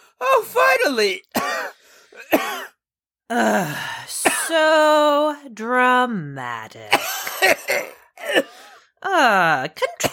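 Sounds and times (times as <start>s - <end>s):
speech: 0.2s - 1.5s, 3.3s - 10.1s
person coughing and clearing their throat after inhaling a worm: 1.4s - 2.8s, 6.9s - 8.6s, 9.9s - 10.1s.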